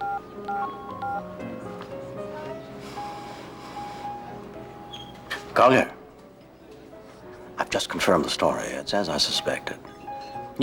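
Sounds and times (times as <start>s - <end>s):
mobile phone keypad tones as a man dials a number: 0.0s - 1.3s
speech: 5.6s - 6.0s, 7.7s - 9.9s.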